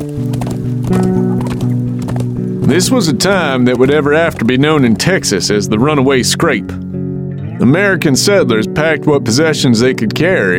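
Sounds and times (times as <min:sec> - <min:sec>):
horse hooves clip-clopping as a horse is ridden away: 0:00.0 - 0:07.0
speech: 0:02.7 - 0:06.8, 0:07.6 - 0:10.5.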